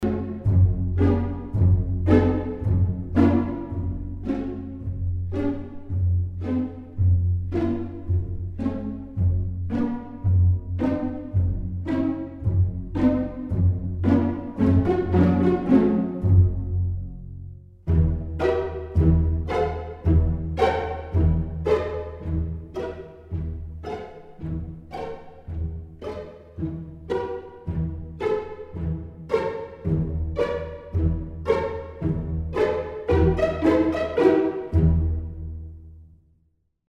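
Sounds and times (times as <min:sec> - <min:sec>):
string ensemble pizzicato: 0:00.0 - 0:36.2.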